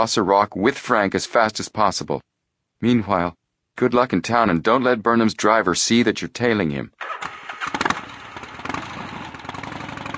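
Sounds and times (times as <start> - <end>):
speech: 0.0 - 7.4
motorcycle engine cranking and sputtering to life: 7.0 - 10.1.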